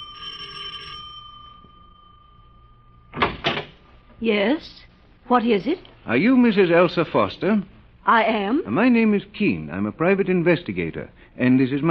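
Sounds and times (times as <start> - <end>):
doorbell ringing at front door: 0.0 - 3.3
door clunks as if being opened: 3.1 - 3.8
speech: 4.2 - 11.8.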